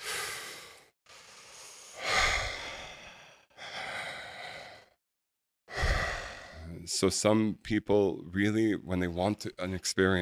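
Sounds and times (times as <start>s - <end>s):
deep slow breathing of a breathwork exercise: 0.0s - 5.0s, 5.7s - 6.8s
speech: 6.8s - 10.2s.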